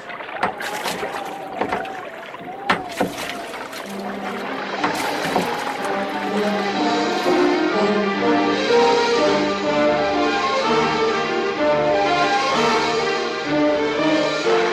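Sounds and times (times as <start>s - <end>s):
wind: 0.0s - 7.9s
oars rowing a boat through water: 0.0s - 14.7s.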